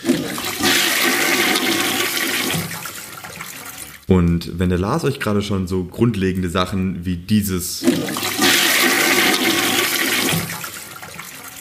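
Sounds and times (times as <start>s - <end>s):
toilet flushing: 0.0s - 4.1s, 7.8s - 11.6s
speech: 4.1s - 8.5s.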